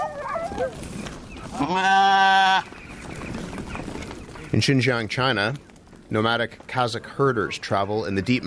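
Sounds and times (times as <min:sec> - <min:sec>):
speech: 0:00.6 - 0:02.8, 0:04.5 - 0:08.4
sheep bleating: 0:01.5 - 0:02.7.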